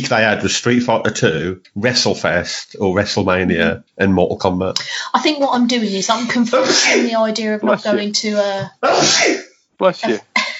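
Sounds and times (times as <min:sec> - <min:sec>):
speech: 0:00.0 - 0:10.3
sneeze: 0:06.6 - 0:07.1, 0:08.8 - 0:09.5.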